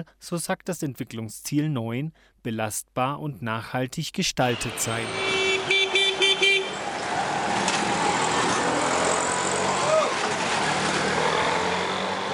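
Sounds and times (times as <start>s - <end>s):
speech: 0.0s - 5.4s
rapid car horn honks: 4.5s - 7.0s
dense city traffic-jam noise with engines rumbling: 4.5s - 12.3s.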